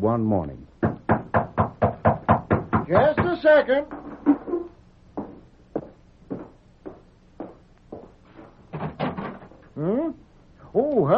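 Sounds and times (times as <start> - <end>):
speech: 0.0 - 0.7, 2.9 - 4.0, 9.8 - 10.2, 10.8 - 11.1
knocking on a wooden door: 0.8 - 4.6.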